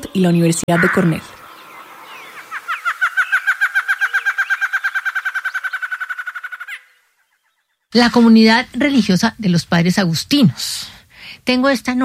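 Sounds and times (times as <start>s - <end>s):
barred antshrike trill: 0.0s - 8.0s
speech: 0.1s - 1.4s, 7.9s - 12.0s.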